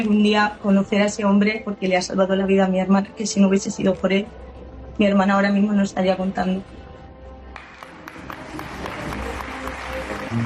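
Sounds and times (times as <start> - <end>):
speech: 0.0 - 4.4, 5.0 - 6.8
crowd applauding: 7.6 - 10.4.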